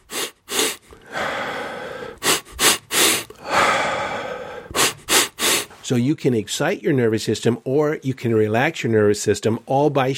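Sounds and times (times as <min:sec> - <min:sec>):
rapid sharp breaths in a breathing exercise: 0:00.0 - 0:05.9
speech: 0:05.9 - 0:10.1.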